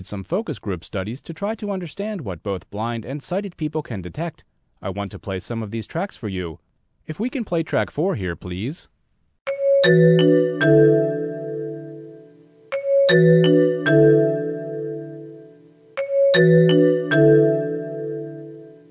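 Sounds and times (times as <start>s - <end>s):
speech: 0.0s - 8.9s, 9.5s - 11.3s, 13.1s - 14.3s, 16.4s - 16.8s
bell-like vehicle warning chime playing a short melodic phrase: 9.5s - 18.9s.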